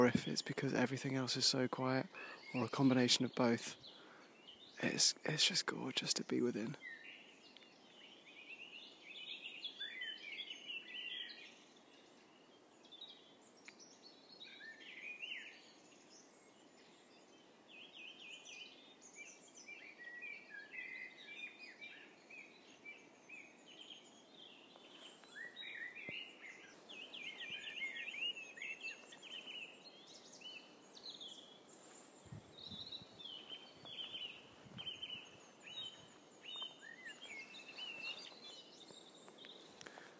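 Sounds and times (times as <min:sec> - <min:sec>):
speech: 0:00.0 - 0:03.9, 0:04.8 - 0:06.9
dawn chorus of great tits, robins and a blackbird: 0:00.0 - 0:40.1.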